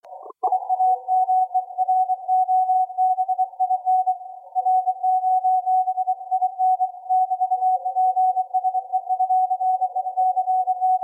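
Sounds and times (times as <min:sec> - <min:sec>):
processed CW morse code tones: 0:00.1 - 0:11.0.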